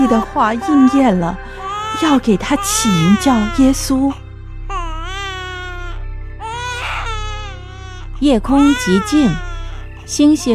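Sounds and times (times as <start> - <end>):
newborn baby crying: 0.0 - 4.0, 4.7 - 10.5
speech: 0.1 - 4.2, 8.2 - 9.5, 10.1 - 10.5.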